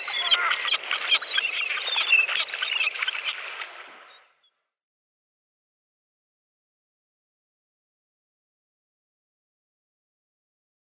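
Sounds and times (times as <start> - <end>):
immature Iceland gull harsh mewing and squealing calls: 0.0 - 3.6.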